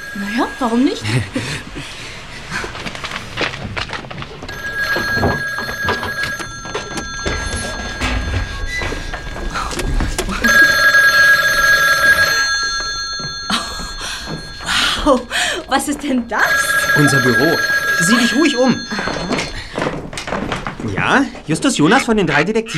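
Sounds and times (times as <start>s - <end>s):
old-style telephone bell ringing: 0.0s - 1.8s, 4.5s - 19.9s
footsteps: 0.0s - 21.5s
speech: 0.1s - 2.7s, 15.8s - 19.0s, 21.0s - 22.7s.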